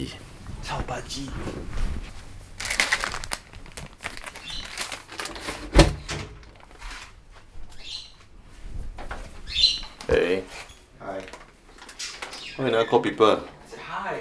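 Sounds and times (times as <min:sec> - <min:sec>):
speech: 0:00.0 - 0:02.1, 0:12.6 - 0:14.1
rustling, scratching and clicking: 0:00.0 - 0:13.7
pet bird chirping: 0:04.3 - 0:04.9, 0:07.7 - 0:08.4, 0:09.4 - 0:10.3, 0:12.0 - 0:13.1.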